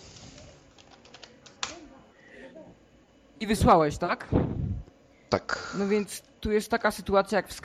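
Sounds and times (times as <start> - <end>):
computer keyboard typing: 0.7 - 1.8
speech: 3.4 - 4.6, 5.4 - 7.6.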